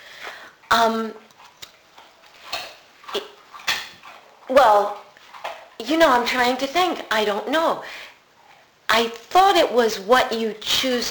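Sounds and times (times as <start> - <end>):
speech: 0.7 - 1.2, 4.5 - 5.0, 5.8 - 8.0, 8.9 - 11.0
dog chewing a bone: 1.2 - 5.8.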